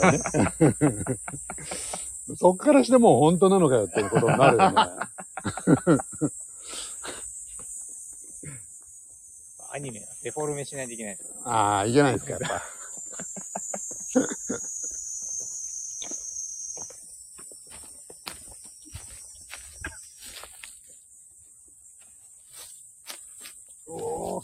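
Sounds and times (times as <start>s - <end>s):
laughter: 0.0s - 2.1s, 3.8s - 6.4s, 11.9s - 15.0s
speech: 0.0s - 6.4s, 9.8s - 12.8s
many cicadas buzzing outdoors: 0.0s - 24.4s
rustling footsteps: 15.3s - 21.1s, 22.0s - 24.4s.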